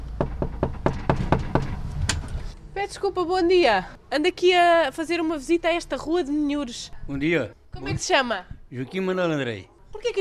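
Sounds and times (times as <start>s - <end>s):
faint outdoor noise: 0.0s - 10.1s
hard knocking on a wooden front door: 0.2s - 1.8s
speech: 2.8s - 10.1s.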